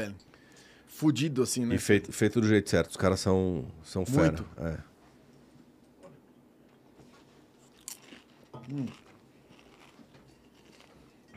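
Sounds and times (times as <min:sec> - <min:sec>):
speech: 0:00.0 - 0:00.3, 0:00.9 - 0:04.9, 0:08.7 - 0:09.0
crunchy snack being bitten and chewed: 0:07.6 - 0:11.3.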